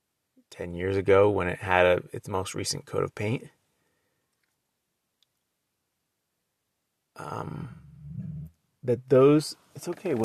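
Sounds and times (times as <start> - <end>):
speech: 0.5 - 3.6, 7.2 - 7.8, 8.8 - 10.2
dog low rumbling growl: 7.8 - 8.5.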